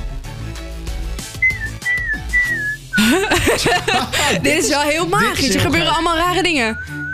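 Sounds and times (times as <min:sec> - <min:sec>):
person whistling over a phone line into a live broadcast: 0:01.4 - 0:03.0, 0:06.7 - 0:07.1
laughter: 0:03.0 - 0:06.3
speech: 0:03.0 - 0:06.9.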